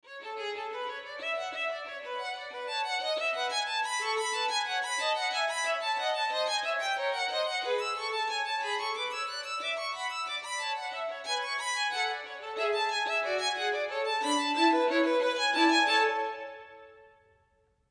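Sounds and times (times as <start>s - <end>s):
duet for two violins: 0.0s - 17.2s.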